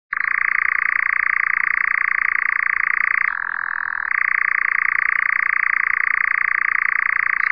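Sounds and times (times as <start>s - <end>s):
nightjar singing: 0.1s - 7.5s.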